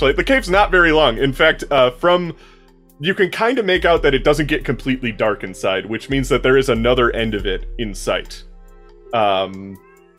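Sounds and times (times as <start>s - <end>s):
speech: 0.0s - 8.5s, 9.1s - 9.9s
cat meowing: 9.6s - 10.1s.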